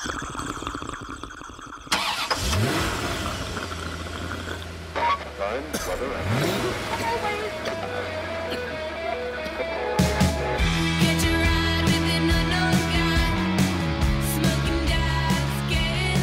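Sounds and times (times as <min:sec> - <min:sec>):
car engine cranking, catching and idling with revs: 0:01.9 - 0:16.2
speech: 0:05.5 - 0:07.7.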